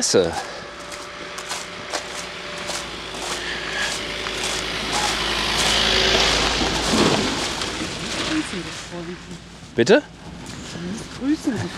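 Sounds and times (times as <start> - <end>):
speech: 0.0 - 0.6, 8.5 - 10.2, 10.8 - 11.7
old diesel car driving by: 0.3 - 9.1.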